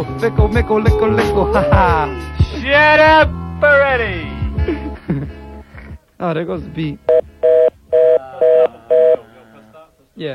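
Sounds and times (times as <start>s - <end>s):
speech: 0.0s - 4.8s, 6.2s - 7.2s, 10.2s - 10.3s
glitching telephone dial tone beeps: 7.1s - 9.2s.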